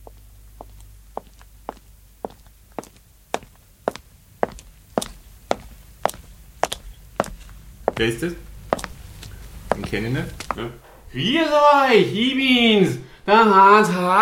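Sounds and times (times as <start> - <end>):
evenly paced footsteps entering a room: 0.0 - 11.4
faint hum: 0.0 - 14.2
speech: 8.0 - 8.5, 9.9 - 14.2
door opening: 10.6 - 11.4.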